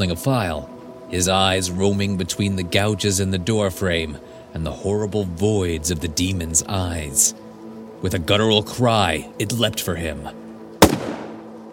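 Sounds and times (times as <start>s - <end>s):
speech: 0.0s - 7.4s, 8.0s - 10.4s
gunshot: 10.8s - 11.5s.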